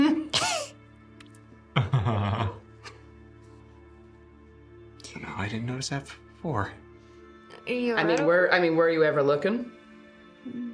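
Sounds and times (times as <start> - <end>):
voice imitating a small dragon-like fey creature coughing out flame: 0.3 - 0.8
speech: 1.8 - 2.1, 5.4 - 6.8, 7.7 - 9.8.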